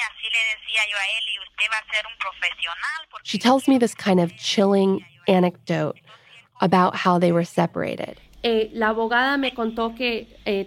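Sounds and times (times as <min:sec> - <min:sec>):
voice speaking over a telephone line from a detention center: 0:00.0 - 0:06.9
speech: 0:00.3 - 0:10.6.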